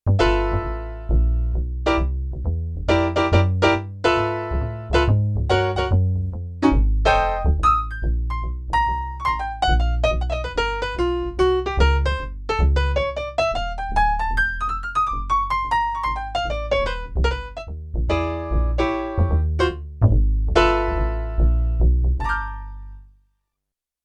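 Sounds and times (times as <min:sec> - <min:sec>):
jazz piano on a Yamaha TX16W: 0:00.0 - 0:23.1
jazz bass on a Yamaha TX16W: 0:00.0 - 0:23.2.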